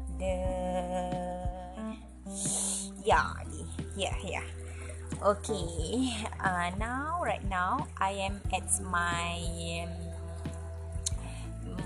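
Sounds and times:
constant low hum: 0.0s - 11.8s
water trickling in small garden waterfall: 0.4s - 11.8s
water plops and splashes: 2.5s - 11.8s
speech: 3.1s - 4.6s, 5.2s - 10.0s.

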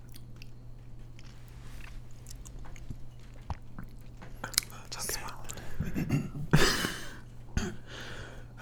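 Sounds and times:
chewing chewy boba pearls: 0.0s - 5.9s
steady low hum: 0.0s - 8.6s.

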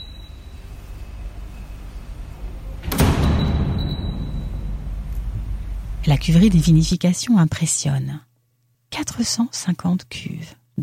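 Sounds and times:
low resonant rumble in a reverberant space: 0.5s - 7.0s
door shutting with a sharp clack: 1.2s - 6.0s
speech: 6.0s - 8.3s, 9.1s - 10.8s.

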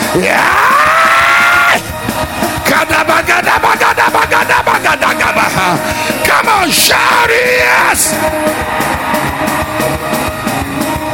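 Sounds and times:
large crowd screaming and shouting in praise: 0.0s - 11.1s
speech: 0.2s - 0.6s, 6.6s - 10.3s.

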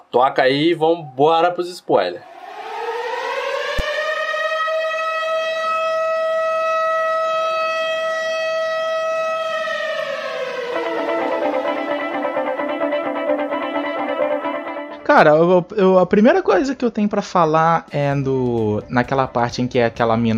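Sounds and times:
speech: 0.1s - 2.4s, 15.2s - 20.3s
civil defense siren wailing: 2.2s - 15.1s.

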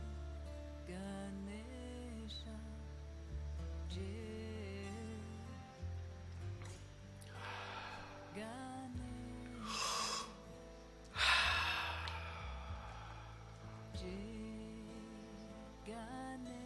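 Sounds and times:
soft sustained music: 0.0s - 16.6s
long airy exhale during a breathing exercise: 7.2s - 8.4s, 9.6s - 10.4s, 11.1s - 13.9s
slow deep inhale during a breathing exercise: 7.2s - 8.5s, 9.6s - 10.5s, 11.1s - 14.0s.

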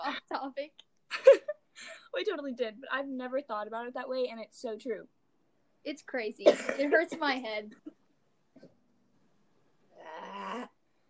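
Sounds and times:
speech: 0.0s - 1.4s, 2.2s - 5.2s, 5.8s - 8.0s
raspy growl-like throat clearing caused by mucus: 6.4s - 7.0s.

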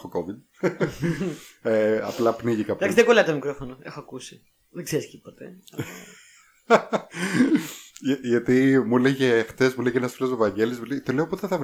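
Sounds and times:
speech: 0.0s - 11.6s
laughter: 0.6s - 1.5s, 5.8s - 7.8s
person clearing throat: 7.2s - 7.8s
person coughing: 7.2s - 7.8s.

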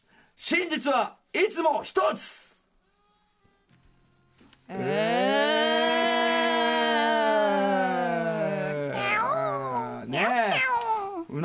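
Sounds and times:
speech: 0.4s - 2.4s, 4.7s - 5.2s
person imitating a cat yowling and meowing: 4.7s - 11.3s.

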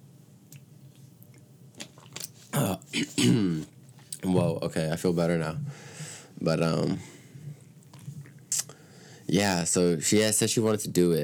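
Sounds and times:
soft wet clicks and gulps of swallowing water: 0.5s - 2.7s, 7.4s - 8.8s
person drinking water: 1.2s - 4.3s, 6.9s - 8.9s
speech: 2.9s - 7.1s, 9.3s - 11.2s.

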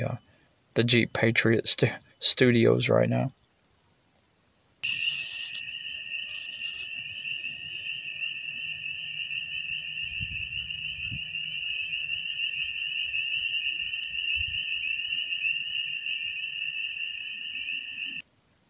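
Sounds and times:
speech: 0.8s - 3.4s, 4.8s - 5.0s
chorus of frogs croaking outdoors at night: 4.8s - 18.2s.

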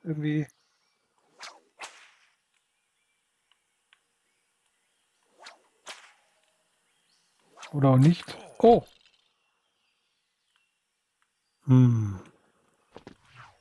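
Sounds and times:
speech: 0.1s - 0.6s, 7.7s - 9.0s, 11.7s - 12.3s
video game whip cracks with swish and snap: 1.3s - 2.4s, 5.4s - 6.4s, 7.5s - 8.3s.

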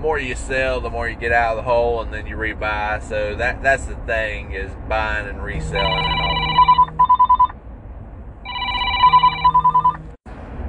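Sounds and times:
speech: 0.0s - 6.2s
telephone ringing with electronic trills: 5.7s - 7.5s, 8.5s - 10.1s.

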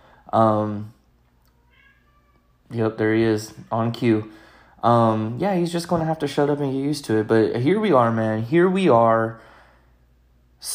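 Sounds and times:
speech: 0.3s - 1.0s, 2.7s - 9.5s, 10.6s - 10.7s
cat meowing: 1.3s - 2.7s.

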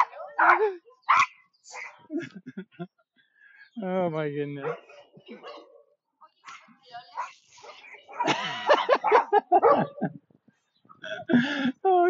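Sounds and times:
dog barking and whimpering: 0.0s - 2.1s, 4.6s - 5.8s, 6.4s - 10.0s
speech: 0.5s - 0.9s, 3.8s - 5.5s, 9.0s - 10.1s
laughter: 2.1s - 3.1s, 8.1s - 12.0s.

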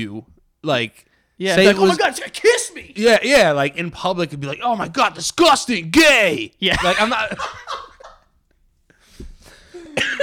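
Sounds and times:
speech: 0.0s - 7.8s
faint breathing: 1.0s - 1.4s, 8.9s - 10.0s
laughter: 1.6s - 3.0s, 6.7s - 8.3s
person with a cold coughing: 9.7s - 10.2s.

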